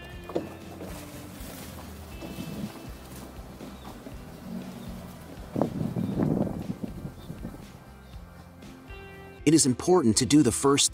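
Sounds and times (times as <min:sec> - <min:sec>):
faint outdoor noise: 0:00.0 - 0:09.4
water lapping and gurgling under a small handmade boat: 0:00.5 - 0:08.6
speech: 0:09.5 - 0:10.9.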